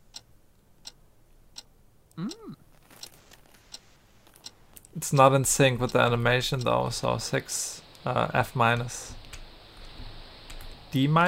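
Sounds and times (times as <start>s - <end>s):
clock ticking: 0.0s - 2.6s, 3.7s - 9.4s
speech: 2.2s - 2.6s, 5.0s - 9.2s, 10.9s - 11.2s.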